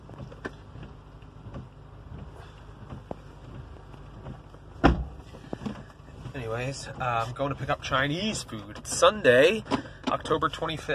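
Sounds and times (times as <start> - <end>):
car engine idling after starting: 0.0 - 10.9
speech: 6.4 - 10.9.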